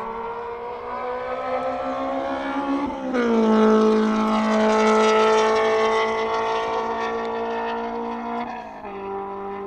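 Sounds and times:
Honda S2000 race car engine passing on a race track: 0.0 - 9.6.

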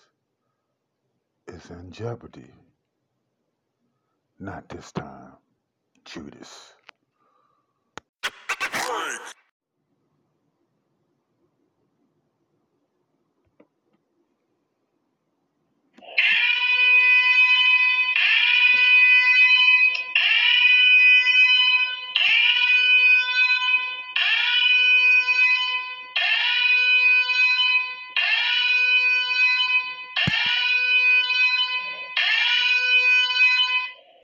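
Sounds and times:
speech: 1.6 - 2.7, 4.4 - 5.4, 6.0 - 6.8
escape alarm blaring in pulses: 16.0 - 34.2.

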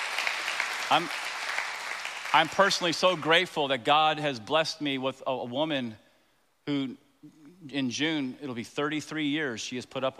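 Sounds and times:
audience applause: 0.0 - 3.4
speech: 0.9 - 1.3, 2.3 - 6.0, 6.6 - 10.1.

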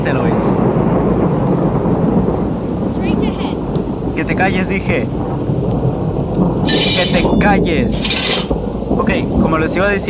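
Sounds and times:
speech: 0.0 - 0.8, 4.3 - 5.3, 7.0 - 10.0
deep continuous rumble of thunder: 0.0 - 10.0
heavy rain pouring in a thunderstorm: 0.0 - 10.0.

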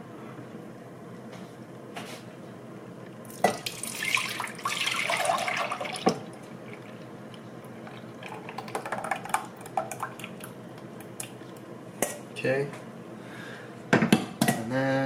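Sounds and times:
liquid poured back into a pot and spilling: 3.2 - 11.7
speech: 12.4 - 12.8, 14.7 - 15.0.

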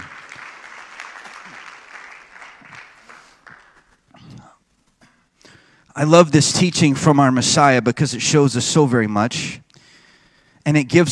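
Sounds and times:
seated audience clapping: 0.0 - 4.3
speech: 6.0 - 9.6, 10.6 - 11.1.

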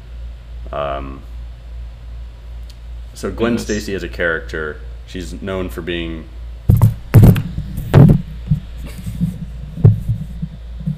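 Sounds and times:
speech: 0.7 - 1.4, 3.2 - 6.4
microphone knocked over with loud thuds and bumps: 6.7 - 10.9.

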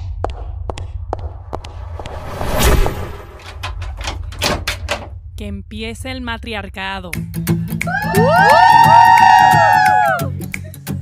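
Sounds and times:
door being closed: 3.4 - 5.2
latch-like clacks: 3.5 - 5.1
speech: 5.4 - 9.7.

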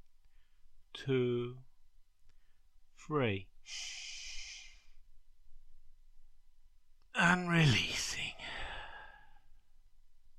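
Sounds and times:
speech: 1.0 - 1.7, 3.0 - 4.0, 7.2 - 8.5
deep breath in during a guided breathing exercise: 3.7 - 5.0, 8.4 - 9.5.

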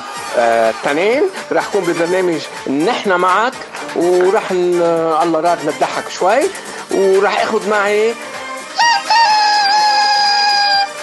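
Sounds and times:
speech: 0.4 - 8.3
rooster crowing cock-a-doodle-doo: 8.8 - 11.0.

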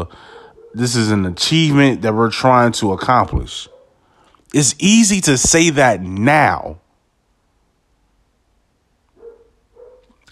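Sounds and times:
speech: 0.0 - 3.7, 4.5 - 6.8
neighbor's dog barking: 0.4 - 0.8, 3.7 - 4.0, 9.2 - 10.2.

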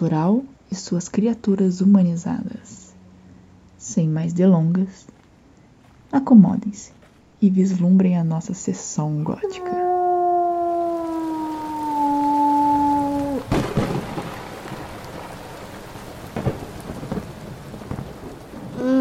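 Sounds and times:
speech: 0.0 - 2.8, 3.8 - 5.1, 6.1 - 9.9
long wavering howl: 9.4 - 13.5
heavy rain: 9.4 - 18.9
scattered thunder rumbles: 9.5 - 18.9
sharp thunder cracks: 11.8 - 18.9.

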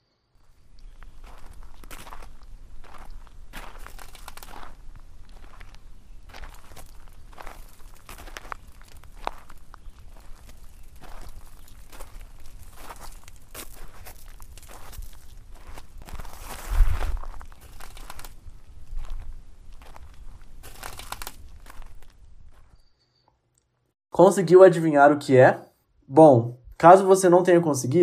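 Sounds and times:
footsteps crunching on a floor of shattered glass: 0.4 - 22.8
speech: 24.2 - 28.0.

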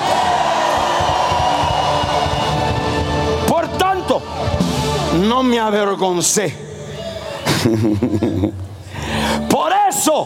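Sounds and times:
audience shouting a victory cry and cheering: 0.0 - 7.5
speech: 5.2 - 6.7, 7.6 - 8.7, 10.0 - 10.2
laughter: 7.2 - 8.8.

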